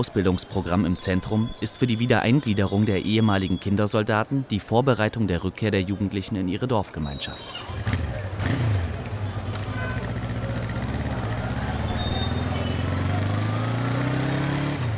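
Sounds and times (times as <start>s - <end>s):
speech: 0.0s - 8.7s
rushing road noise: 0.0s - 14.9s
small motorcycle taxi engine droning while riding: 7.6s - 14.9s.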